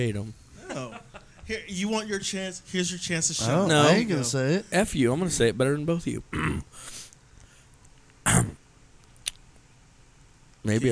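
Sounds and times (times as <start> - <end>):
speech: 0.0 - 0.4, 1.5 - 7.0, 10.6 - 10.9
faint room noise: 0.0 - 10.9
gravelly throat clearing: 6.3 - 6.7, 8.2 - 8.6.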